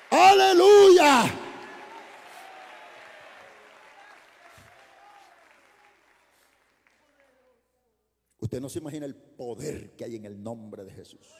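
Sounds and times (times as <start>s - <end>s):
audience applauding: 0.0s - 7.6s
speech: 8.5s - 11.3s.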